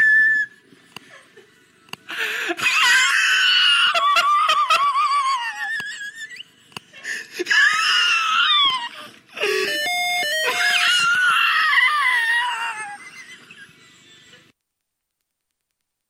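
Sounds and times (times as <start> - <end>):
wheezing: 0.2 - 2.8, 6.0 - 7.9, 8.9 - 10.9
laughter: 0.8 - 14.5.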